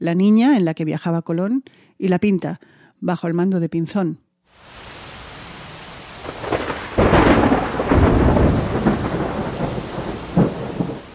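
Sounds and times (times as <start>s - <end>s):
speech: 0.0s - 4.8s
heavy rain pouring in a storm at sea: 4.5s - 11.1s
deep thunder rumbling and cracking in a storm at sea: 6.2s - 11.1s.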